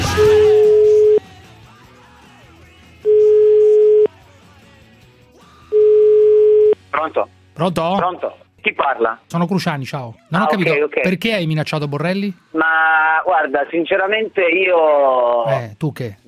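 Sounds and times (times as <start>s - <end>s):
ringback tone on a telephone line while a call is being placed: 0.2s - 1.2s, 3.1s - 4.1s, 5.7s - 6.8s
speech: 7.0s - 16.2s.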